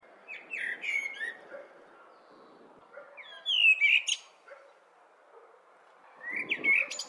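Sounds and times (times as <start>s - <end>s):
light background noise: 0.0s - 7.0s
blackbird singing: 0.2s - 4.8s, 6.1s - 7.0s.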